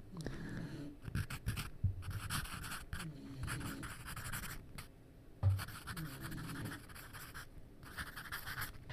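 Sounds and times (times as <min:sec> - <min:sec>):
pencil writing on paper: 0:01.1 - 0:04.6, 0:05.5 - 0:08.8.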